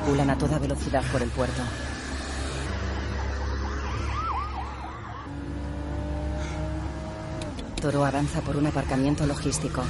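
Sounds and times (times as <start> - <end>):
speech: 0.1 - 2.0, 7.8 - 9.8
police patrol car siren wailing during a high-speed car chase: 2.4 - 7.0.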